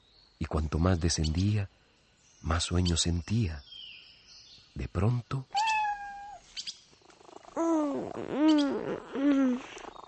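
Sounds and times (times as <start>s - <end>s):
speech: 0.5s - 1.8s, 2.4s - 3.7s, 4.8s - 5.6s, 7.6s - 9.9s
kitten meowing: 5.6s - 6.4s.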